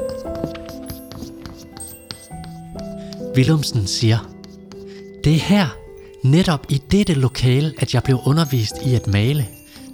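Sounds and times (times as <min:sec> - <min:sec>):
chalk tapping and scratching across a blackboard while writing: 0:00.0 - 0:05.6
speech: 0:03.4 - 0:04.3, 0:05.2 - 0:09.6.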